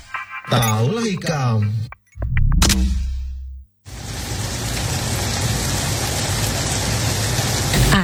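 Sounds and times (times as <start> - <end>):
speech: 0.5 - 2.0, 2.8 - 3.0
heavy rain: 3.9 - 8.0.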